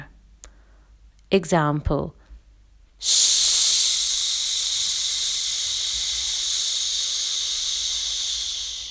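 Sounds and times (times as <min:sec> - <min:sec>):
speech: 0:01.3 - 0:02.2, 0:03.0 - 0:03.4
long forced exhale through the mouth without voice: 0:03.0 - 0:08.8.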